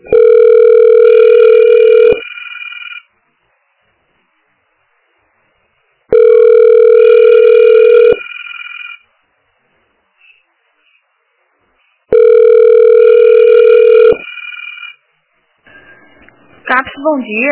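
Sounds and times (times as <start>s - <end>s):
telephone ringback tone while waiting on hold: 0.1s - 3.1s, 6.1s - 9.0s, 12.1s - 15.0s
speech: 17.0s - 17.5s.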